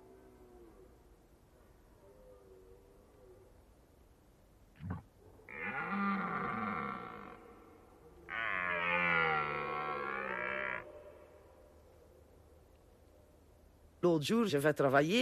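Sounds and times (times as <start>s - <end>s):
red deer stag bellowing during the rut: 5.5s - 7.6s, 8.2s - 11.2s
speech: 14.1s - 15.2s.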